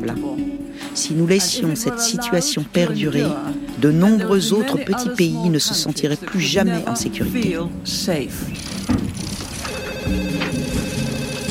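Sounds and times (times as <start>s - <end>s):
speech: 0.0s - 9.3s
telephone ringing: 9.5s - 11.4s.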